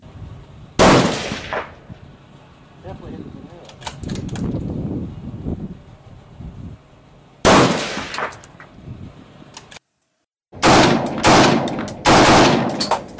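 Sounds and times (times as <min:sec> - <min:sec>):
rifle shots fired at a target with 69-grain match ammunition: 0:00.8 - 0:01.8, 0:07.4 - 0:08.4, 0:10.6 - 0:13.1.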